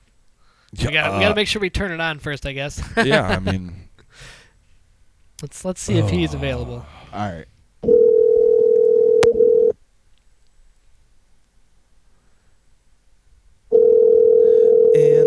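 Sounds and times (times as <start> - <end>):
speech: 0.7 - 4.4, 5.4 - 7.5
outgoing phone call ringback tone: 7.9 - 9.8, 13.7 - 15.2.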